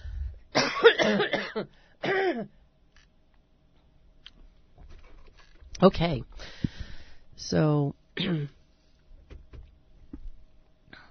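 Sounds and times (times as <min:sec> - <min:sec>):
person coughing close to the microphone: 0:00.5 - 0:02.6, 0:08.2 - 0:08.6
person clearing throat close to the microphone: 0:00.6 - 0:02.6, 0:08.2 - 0:08.6
speech: 0:01.1 - 0:02.6, 0:05.8 - 0:06.7, 0:07.4 - 0:08.6.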